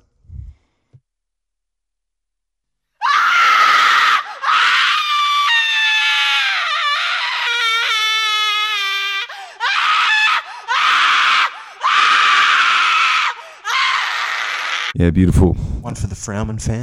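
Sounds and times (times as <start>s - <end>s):
person screaming: 3.0s - 15.0s
speech: 15.0s - 16.8s.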